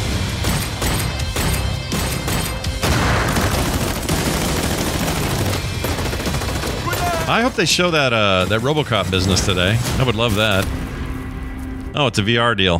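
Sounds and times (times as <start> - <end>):
rapid automatic gunfire in a shooter video game trailer: 0.4 - 7.6
speech: 7.3 - 10.8, 12.0 - 12.7.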